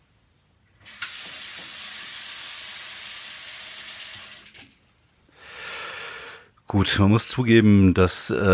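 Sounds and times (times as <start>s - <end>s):
tap water running from a faucet: 0.8s - 4.8s
speech: 6.7s - 8.5s.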